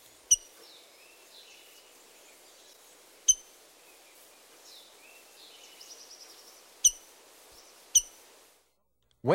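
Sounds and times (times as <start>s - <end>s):
faint birdsong twittering: 0.0s - 8.8s
rose-breasted grosbeak metallic chink calls: 0.3s - 0.6s, 3.3s - 3.6s, 6.8s - 7.1s, 8.0s - 8.2s.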